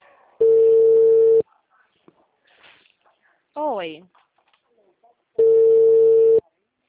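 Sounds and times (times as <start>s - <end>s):
telephone line tone while placing a call: 0.4s - 1.4s, 5.4s - 6.4s
speech: 3.8s - 4.2s.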